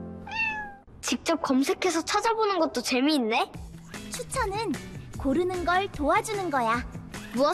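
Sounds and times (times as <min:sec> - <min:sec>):
cat meowing in an online cute-animal video: 0:00.3 - 0:00.9
speech: 0:01.1 - 0:07.5.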